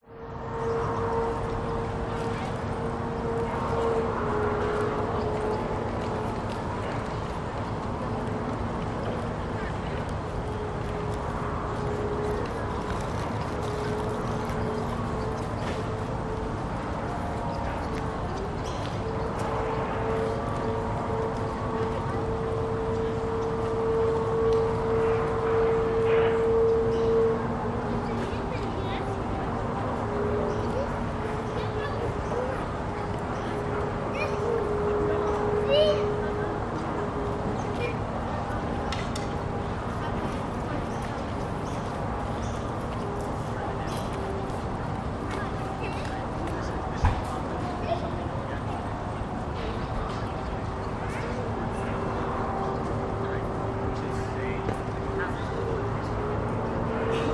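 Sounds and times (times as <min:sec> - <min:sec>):
distant city noise at midday outside a botanic gardens cafe in Sydney: 0:00.0 - 0:57.3
few people at a botanic gardens cafe in Sydney: 0:00.0 - 0:57.3.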